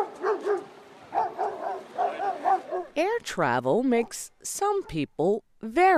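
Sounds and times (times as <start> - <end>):
dog barking: 0.0 - 3.0
speech: 3.0 - 5.9.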